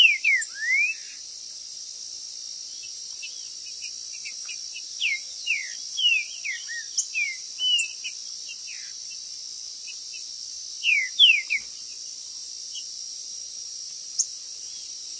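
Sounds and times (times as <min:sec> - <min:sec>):
Green-winged saltator singing clear downward-sliding whistles in a territorial contest: 0:00.0 - 0:01.2, 0:05.0 - 0:08.1, 0:10.8 - 0:11.7
high insect-like hiss: 0:00.0 - 0:15.1.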